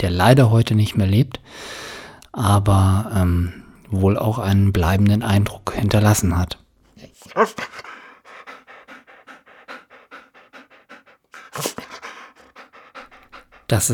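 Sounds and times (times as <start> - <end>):
speech: 0.0 - 6.6, 7.2 - 7.9, 13.7 - 13.9
dog panting rapidly: 7.0 - 13.9.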